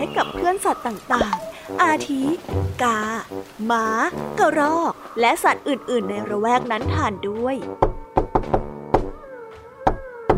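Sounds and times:
speech: 0.1 - 8.6
loud knocking on a house door: 7.6 - 9.2, 9.8 - 10.3.

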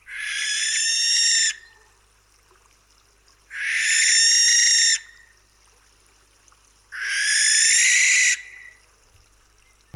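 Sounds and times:
barn owl in England screeching: 0.1 - 1.6, 3.5 - 5.1, 7.0 - 8.7.

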